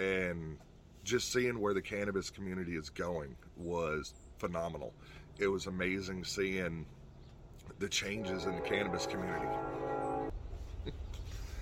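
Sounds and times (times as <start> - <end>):
speech: 0.0 - 7.0, 7.7 - 10.0
low continuous rumble: 0.0 - 11.5
loud steady train horn blast from a train in the countryside: 8.0 - 10.4.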